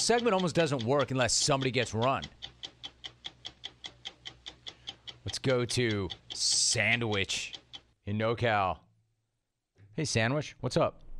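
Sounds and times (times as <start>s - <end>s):
speech: 0.0s - 2.5s, 5.2s - 8.8s, 10.0s - 11.0s
clock ticking: 0.0s - 8.8s.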